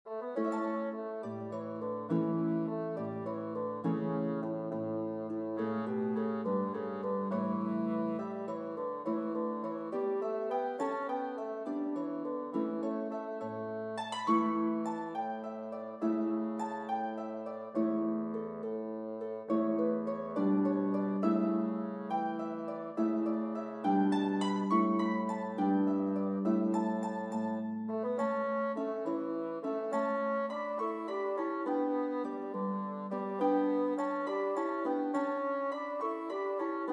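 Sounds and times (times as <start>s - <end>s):
bassoon: 0.0s - 36.9s
harp: 0.0s - 36.9s.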